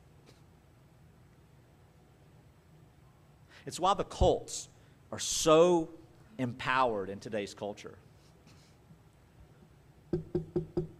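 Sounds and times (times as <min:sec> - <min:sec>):
speech: 0:03.6 - 0:08.1
firm knocks on a door: 0:10.1 - 0:10.9.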